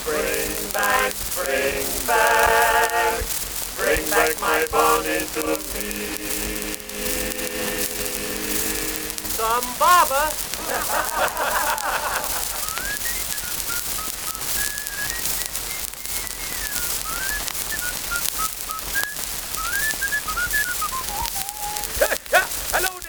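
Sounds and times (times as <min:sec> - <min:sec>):
constant hiss of noise: 0:00.0 - 0:23.0
laughter: 0:09.2 - 0:12.7, 0:21.9 - 0:22.7
person whistling a wandering tune: 0:12.4 - 0:22.0.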